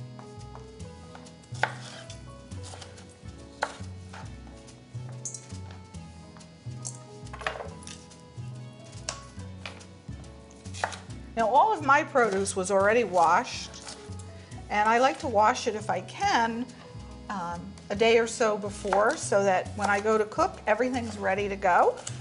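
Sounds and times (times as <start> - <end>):
knife chopping seeded vegetables on a cutting board: 0.5 - 4.3, 10.6 - 11.1, 13.2 - 14.2, 18.8 - 20.1, 21.9 - 22.1
speech: 11.4 - 13.7, 14.7 - 16.7, 17.3 - 22.1.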